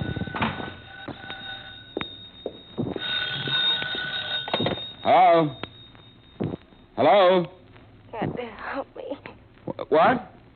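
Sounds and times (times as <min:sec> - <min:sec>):
telephone ringing with a bright bell tone: 0:00.0 - 0:07.4
speech: 0:05.0 - 0:05.6, 0:07.0 - 0:07.6, 0:09.9 - 0:10.2.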